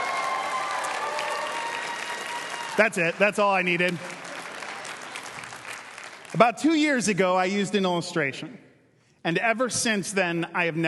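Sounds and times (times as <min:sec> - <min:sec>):
audience applause: 0:00.0 - 0:06.4
speech: 0:02.8 - 0:04.2, 0:06.4 - 0:10.8.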